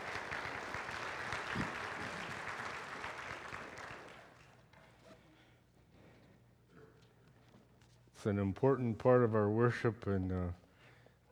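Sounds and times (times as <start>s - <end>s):
room full of people applauding musicians: 0.0s - 4.5s
speech: 8.2s - 10.6s.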